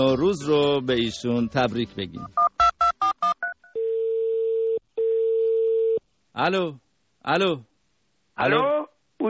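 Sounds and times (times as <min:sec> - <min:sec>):
speech: 0:00.0 - 0:02.4, 0:06.4 - 0:07.7, 0:08.4 - 0:09.2
long steady telephone ringback tones: 0:03.2 - 0:06.0.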